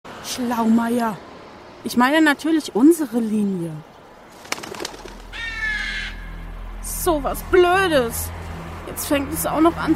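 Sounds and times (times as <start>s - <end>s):
speech: 0.3s - 3.9s, 7.0s - 9.9s
bird calling: 4.0s - 6.5s.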